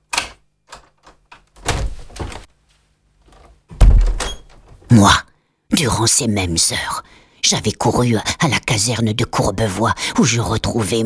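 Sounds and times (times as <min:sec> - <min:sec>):
door creaking as it swings wide open: 0:00.0 - 0:02.5, 0:03.3 - 0:04.9
door taps and rattles: 0:00.0 - 0:02.5, 0:03.7 - 0:04.8
heavy door thud: 0:01.6 - 0:02.5, 0:03.7 - 0:04.8
speech: 0:04.9 - 0:11.0.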